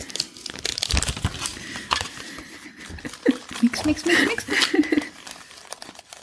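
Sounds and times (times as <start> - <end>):
yellow plastic packet crinkling as it is shaken out: 0.0 - 6.2
speech: 3.8 - 4.8.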